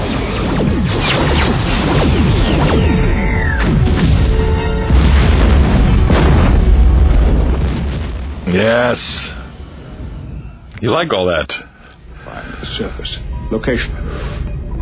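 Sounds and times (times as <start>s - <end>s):
quantum torpedoes fired from a starship: 0.0s - 10.2s
explosions on a planet's surface: 0.0s - 10.4s
speech: 8.9s - 9.3s, 10.8s - 11.7s, 12.7s - 14.4s.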